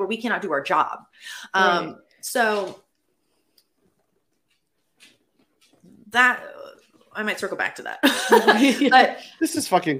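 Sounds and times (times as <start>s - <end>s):
speech: 0.0s - 2.8s, 6.1s - 9.9s
dog's paws clicking and tapping across a floor: 3.8s - 7.9s
laughter: 8.0s - 9.3s.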